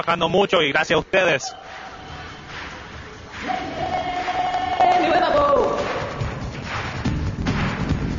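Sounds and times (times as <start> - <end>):
speech: 0.0 - 1.8
large crowd cheering with shouts and whoops: 1.5 - 6.4
large crowd applauding: 1.5 - 8.1.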